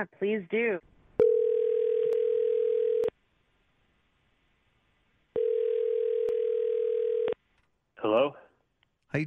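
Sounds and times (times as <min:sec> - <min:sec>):
speech: 0:00.0 - 0:00.9, 0:08.0 - 0:08.4
electronic phone ringback tone for an outgoing call: 0:01.2 - 0:03.1, 0:05.4 - 0:07.4.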